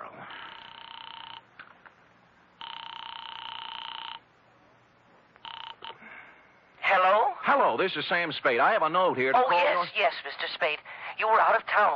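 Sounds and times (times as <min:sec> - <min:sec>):
telephone ringing through the receiver: 0:00.3 - 0:01.7, 0:02.6 - 0:04.4, 0:05.4 - 0:06.0
speech: 0:07.5 - 0:11.9.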